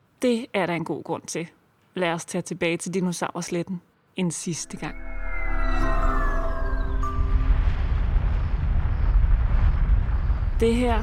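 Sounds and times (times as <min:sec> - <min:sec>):
speech: 0:00.2 - 0:05.9, 0:10.6 - 0:11.0
brief descending tonal whine: 0:04.6 - 0:08.8
volcanic eruption with deep continuous roaring rumble: 0:07.0 - 0:11.0.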